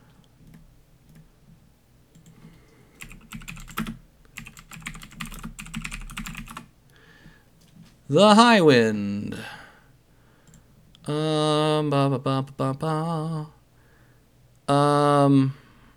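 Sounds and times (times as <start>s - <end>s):
typing on a computer keyboard: 3.0s - 6.7s
speech: 8.1s - 9.5s, 11.1s - 13.6s, 14.7s - 15.6s.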